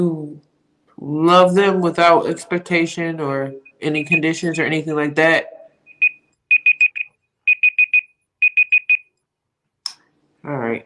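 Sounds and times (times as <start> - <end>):
speech: 0.0 - 5.5
alarm beeping high-pitched: 3.6 - 4.6, 5.5 - 9.1.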